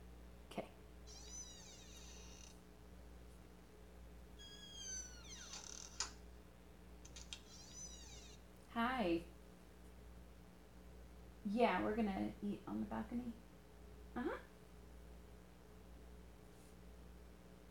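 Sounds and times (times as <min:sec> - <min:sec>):
speech: 0:00.6 - 0:00.8, 0:08.8 - 0:09.3, 0:11.5 - 0:13.5, 0:14.2 - 0:14.5
door hinges creaking open: 0:01.1 - 0:02.5, 0:04.4 - 0:06.2, 0:07.1 - 0:08.4.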